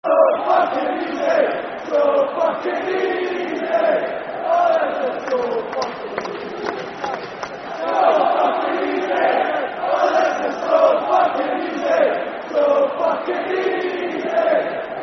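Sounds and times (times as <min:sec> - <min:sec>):
football crowd chanting soccer songs: 0:00.0 - 0:15.0.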